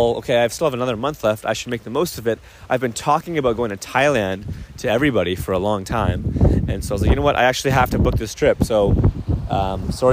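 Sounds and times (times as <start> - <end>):
speech: 0.0 - 10.1
low rumbling gusts of wind buffeting a phone microphone: 3.0 - 10.1.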